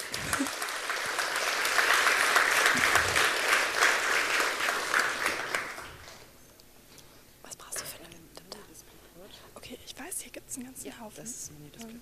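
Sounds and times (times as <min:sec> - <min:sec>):
audience applause for a performer coming on stage: 0:00.0 - 0:06.3.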